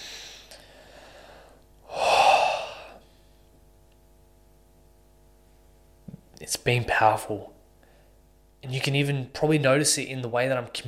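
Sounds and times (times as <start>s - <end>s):
person taking a deep breath: 0.0s - 3.5s
speech: 6.5s - 7.5s, 8.7s - 10.8s.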